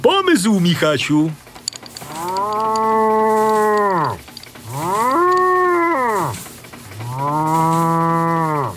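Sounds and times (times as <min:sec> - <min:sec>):
speech: 0:00.4 - 0:01.4
cows mooing inside a train wagon heard through a stethoscope: 0:02.0 - 0:08.7.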